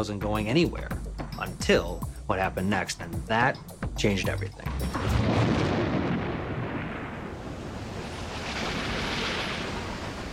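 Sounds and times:
speech: 0.0s - 5.2s
deep rolling thunder from an intense storm: 4.6s - 10.3s
steady storm noise: 4.8s - 10.3s.

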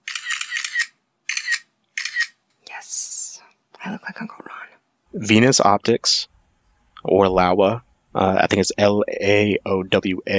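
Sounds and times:
mechanical camera shutter clicks: 0.0s - 2.4s
speech: 3.8s - 6.3s, 7.0s - 10.3s.

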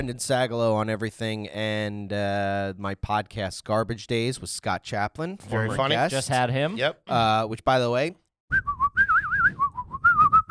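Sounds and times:
speech: 0.0s - 8.8s
person whistling a wavering warbling tune: 8.5s - 10.4s.

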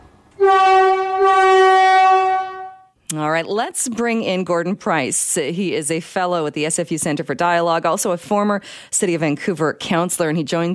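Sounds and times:
new SkyTrain car horn blaring: 0.3s - 3.0s
speech: 3.2s - 10.7s.

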